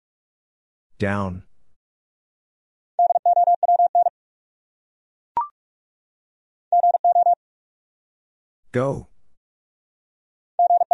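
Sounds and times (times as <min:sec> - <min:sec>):
speech: 0:01.0 - 0:01.5, 0:08.7 - 0:09.1
rapid Morse code beeps in a mid-pitched tone: 0:03.0 - 0:04.1, 0:06.7 - 0:07.4, 0:10.6 - 0:10.9.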